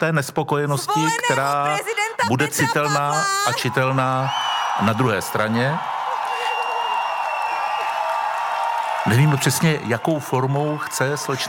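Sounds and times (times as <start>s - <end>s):
speech: 0.0s - 6.0s, 9.0s - 11.4s
large crowd at a rally applauding and cheering: 0.9s - 11.4s.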